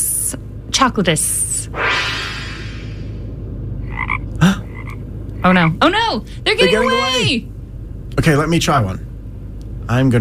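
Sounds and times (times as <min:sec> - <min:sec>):
low steady hum: 0:00.0 - 0:10.1
speech: 0:00.3 - 0:01.9, 0:05.4 - 0:07.5, 0:08.2 - 0:09.1, 0:09.9 - 0:10.1
frogs croaking: 0:03.8 - 0:05.8.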